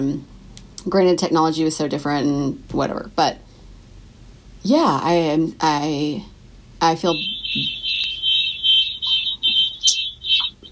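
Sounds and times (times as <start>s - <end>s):
speech: 0.0s - 3.4s, 4.6s - 7.8s
car alarm blaring outside an apartment: 7.0s - 10.6s.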